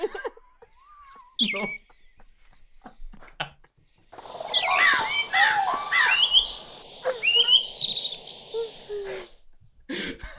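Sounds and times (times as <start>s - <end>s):
several birds chirping, whistling, trilling and tweeting: 0.8s - 2.8s, 3.9s - 9.4s.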